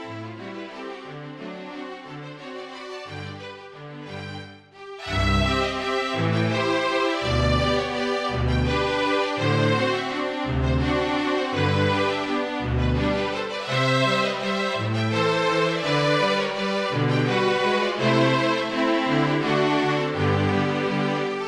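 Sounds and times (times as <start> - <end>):
flute trio playing: 5.1 - 21.3.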